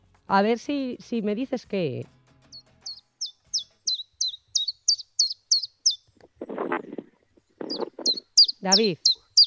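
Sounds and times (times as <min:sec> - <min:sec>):
speech: 0:00.3 - 0:02.2, 0:08.6 - 0:09.1
common chiffchaff singing: 0:02.5 - 0:06.2, 0:07.5 - 0:09.4.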